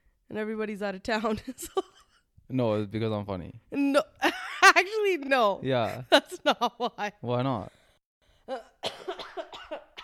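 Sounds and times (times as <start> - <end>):
speech: 0.3 - 1.9, 2.5 - 7.8, 8.5 - 8.7
person coughing: 8.5 - 10.0.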